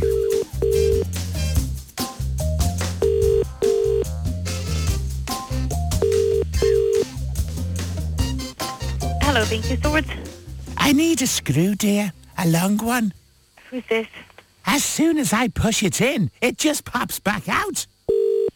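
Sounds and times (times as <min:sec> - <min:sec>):
telephone ringing tone of a call to a DIY store: 0:00.0 - 0:01.1, 0:03.0 - 0:04.1, 0:05.9 - 0:07.1, 0:18.1 - 0:18.5
bass-heavy backing music: 0:00.0 - 0:11.7
speech: 0:09.5 - 0:10.3, 0:10.9 - 0:17.9.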